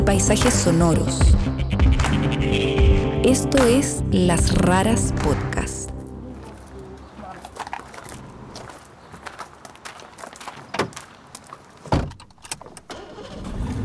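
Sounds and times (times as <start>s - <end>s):
speech: 0.0s - 1.6s, 2.4s - 5.6s
Mini car engine and road noise while driving: 6.0s - 13.8s.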